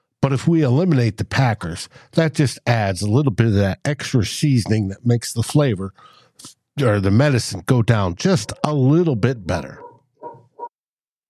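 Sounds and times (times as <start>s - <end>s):
speech: 0.2s - 9.8s
dog barking: 8.2s - 8.9s, 9.6s - 10.7s.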